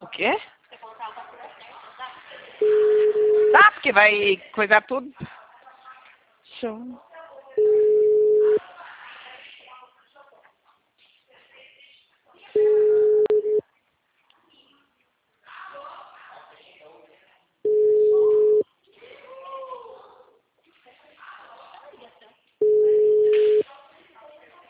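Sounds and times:
speech: 0:00.2 - 0:00.5, 0:04.0 - 0:05.3, 0:06.6 - 0:07.1
telephone busy signal: 0:02.6 - 0:03.6, 0:07.6 - 0:08.6, 0:12.6 - 0:13.6, 0:17.7 - 0:18.6, 0:22.6 - 0:23.6.

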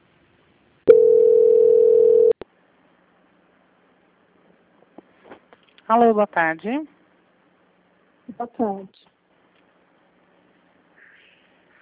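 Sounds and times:
telephone tone as a call is put on hold for transfer: 0:00.9 - 0:02.4
speech: 0:05.9 - 0:07.0, 0:08.4 - 0:09.0.

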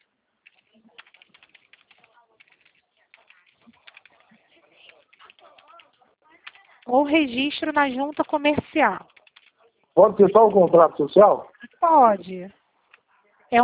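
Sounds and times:
typing on a computer keyboard: 0:00.4 - 0:09.6
speech: 0:06.9 - 0:09.1, 0:10.0 - 0:12.6.

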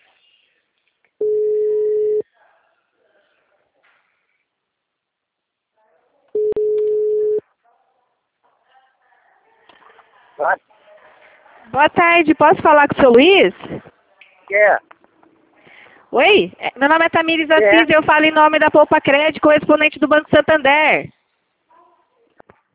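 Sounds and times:
telephone line tones while placing a call: 0:01.2 - 0:02.2, 0:06.4 - 0:07.4
speech: 0:10.4 - 0:10.7, 0:11.7 - 0:13.9, 0:14.5 - 0:14.9, 0:16.1 - 0:21.2.

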